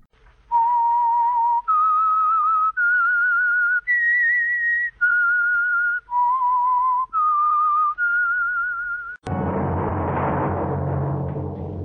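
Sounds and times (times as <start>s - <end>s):
person whistling an eerie eight-note tune: 0.5s - 9.2s
loud burst of full dense sound: 9.2s - 11.8s.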